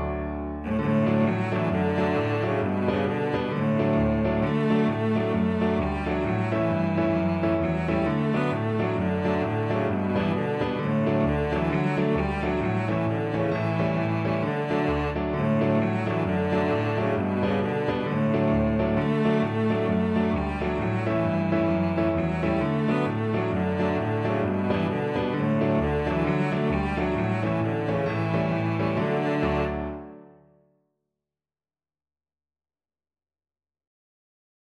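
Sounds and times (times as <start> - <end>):
cello: 0.1 - 30.3.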